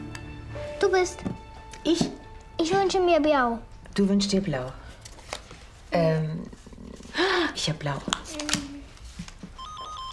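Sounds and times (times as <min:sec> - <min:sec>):
speech: 0:00.8 - 0:04.8, 0:07.6 - 0:08.4
telephone ringing with electronic warbling trill: 0:09.6 - 0:10.1.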